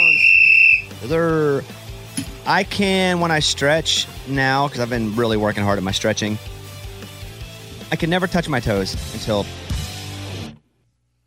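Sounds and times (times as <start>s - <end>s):
shrill whistle blast: 0.0s - 1.0s
speech: 1.0s - 6.5s, 7.9s - 9.6s.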